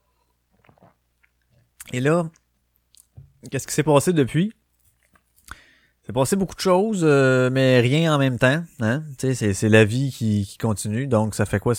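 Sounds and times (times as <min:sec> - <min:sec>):
quiet sip and swallow of a drink: 0:00.0 - 0:03.2
speech: 0:01.9 - 0:02.4, 0:03.4 - 0:04.6, 0:06.1 - 0:11.7.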